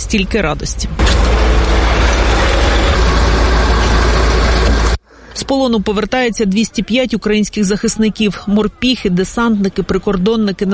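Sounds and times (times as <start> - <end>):
speech: 0.1 - 2.0, 5.5 - 10.7
bus engines idling: 0.9 - 5.0.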